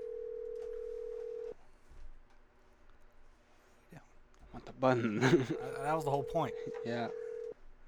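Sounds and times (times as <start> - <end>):
telephone ringback tone on an outgoing call: 0.0 - 1.5, 5.6 - 7.5
speech: 4.6 - 7.2
laughter: 4.9 - 6.3.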